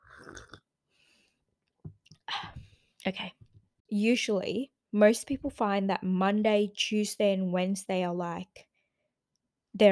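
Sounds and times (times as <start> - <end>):
person slurping tea: 0.0 - 0.7
quick clicky swallowing of tea: 0.0 - 0.7
speech: 3.0 - 8.7, 9.8 - 9.9.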